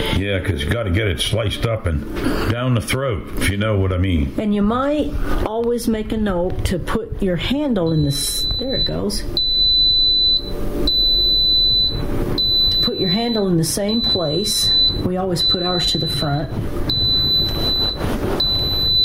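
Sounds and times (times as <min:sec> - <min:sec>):
speech: 0:00.2 - 0:09.4, 0:13.1 - 0:16.9
kitchen appliance beeping: 0:07.8 - 0:19.0.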